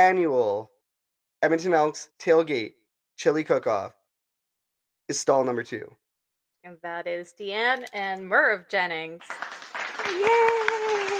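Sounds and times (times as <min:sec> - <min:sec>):
speech: 0:00.0 - 0:00.7, 0:01.4 - 0:04.0, 0:05.1 - 0:06.0, 0:06.6 - 0:11.1
crowd clapping: 0:09.2 - 0:11.1
person cheering: 0:10.0 - 0:11.1.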